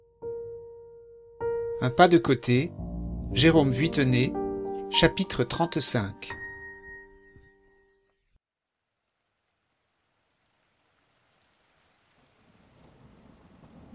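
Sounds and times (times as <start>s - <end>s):
brief sustained musical tone: 0.2s - 7.7s
speech: 1.8s - 6.4s
low thunder rumble: 2.7s - 4.8s, 12.5s - 13.9s
steady hissing rainfall: 8.9s - 13.9s.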